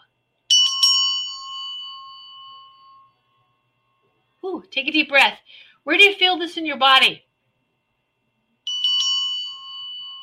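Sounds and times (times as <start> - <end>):
small bell struck: 0.5 - 4.0, 8.7 - 10.2
speech: 4.6 - 7.3.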